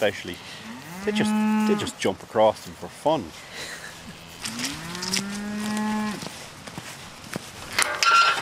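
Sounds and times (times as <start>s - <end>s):
speech: 0.0s - 4.7s
faint outdoor rustling and scuffing: 0.0s - 8.4s
rare breed cow mooing in a field: 0.6s - 2.0s, 4.4s - 6.3s.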